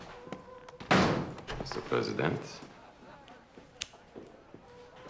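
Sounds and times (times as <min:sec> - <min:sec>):
door slamming: 0:00.8 - 0:01.6
speech: 0:01.7 - 0:02.7.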